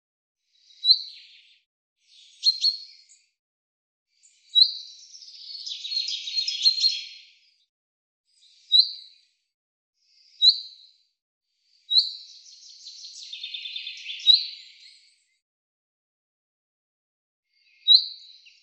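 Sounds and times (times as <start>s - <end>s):
common chaffinch short sharp calls: 2.2s - 3.0s, 4.6s - 7.2s, 11.9s - 14.6s.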